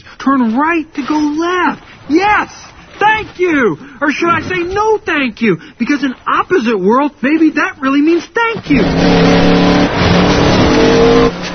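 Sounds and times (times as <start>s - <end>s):
speech: 0.2s - 9.8s, 11.0s - 11.5s
car engine revving hard: 8.6s - 11.5s.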